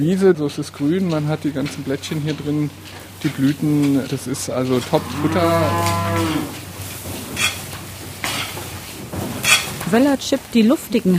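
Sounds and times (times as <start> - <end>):
speech: 0.0 - 6.6, 9.9 - 11.1
cows at a feeding rack rustling and crunching home-made hay: 0.0 - 11.1
cow mooing at feeding time: 4.8 - 6.6.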